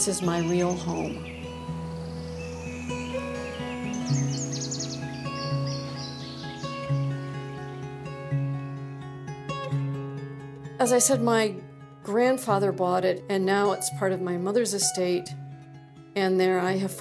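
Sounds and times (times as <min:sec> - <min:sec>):
speech: 0:00.0 - 0:01.4, 0:10.8 - 0:15.4, 0:16.2 - 0:16.9
bright morning birdsong with chirps and trills: 0:00.0 - 0:09.2.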